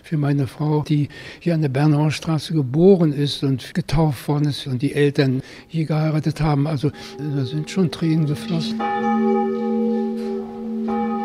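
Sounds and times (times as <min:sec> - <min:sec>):
speech: 0:00.1 - 0:10.3
old church bells ringing in a bell house beside a chapel: 0:05.4 - 0:11.2.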